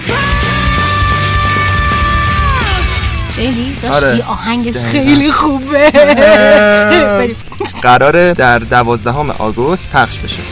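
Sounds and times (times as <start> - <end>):
person screaming excitedly: 0.0 - 2.9
loud busy music: 0.0 - 7.5
speech: 3.4 - 10.5
laughter: 4.8 - 8.0.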